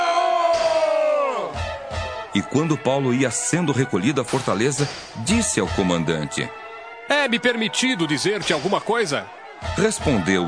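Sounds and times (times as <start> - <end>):
crowd shouting angrily: 0.0 - 2.4, 7.5 - 10.4
speech: 2.4 - 10.4.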